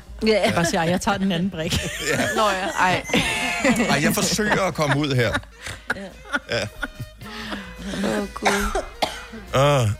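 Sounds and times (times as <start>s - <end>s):
speech: 0.2s - 7.0s, 7.9s - 8.9s, 9.5s - 9.9s
laughter: 1.7s - 8.4s
person coughing: 7.4s - 9.5s.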